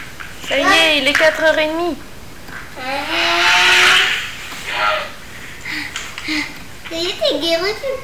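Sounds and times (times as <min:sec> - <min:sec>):
speech: 0:00.5 - 0:02.1, 0:06.3 - 0:08.0
car engine revving: 0:02.8 - 0:05.2.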